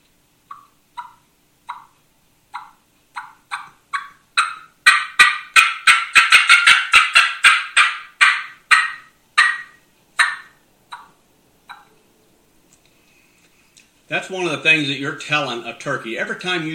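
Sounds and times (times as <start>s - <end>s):
turkey fly-down cackle imitated on a mouth call: 0.4s - 12.0s
speech: 14.1s - 16.7s.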